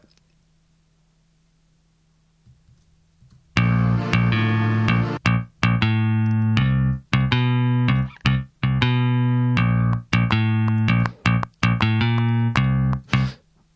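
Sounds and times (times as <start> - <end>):
plucked bass guitar playing a syncopated phrase: 3.5 - 13.4.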